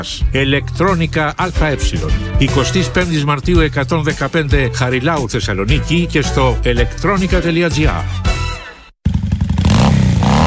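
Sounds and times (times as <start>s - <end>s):
speech: 0.0s - 8.3s
motorcycle engine revving loudly: 9.0s - 10.4s.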